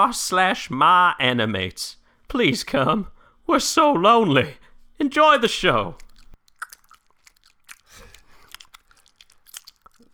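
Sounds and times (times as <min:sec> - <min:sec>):
speech: 0:00.0 - 0:06.0
wet chewing of gum with smacking and crunchy bites: 0:05.6 - 0:10.1.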